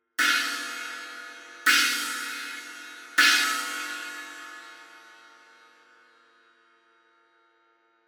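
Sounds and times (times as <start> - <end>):
China cymbal hits: 0.2 - 5.5.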